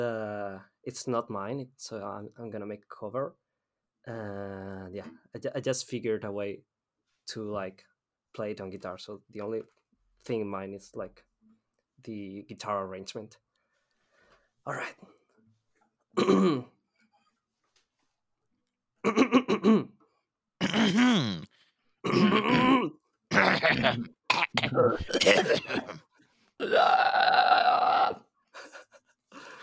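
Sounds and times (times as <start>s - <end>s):
speech: 0.8s - 3.4s, 4.0s - 6.7s, 7.3s - 11.3s, 12.0s - 13.4s, 14.6s - 15.2s, 16.2s - 16.8s, 19.0s - 20.0s, 20.7s - 23.0s, 23.6s - 28.2s
people clearing their throats: 16.2s - 16.8s, 19.0s - 20.0s, 20.6s - 26.0s, 26.6s - 28.2s.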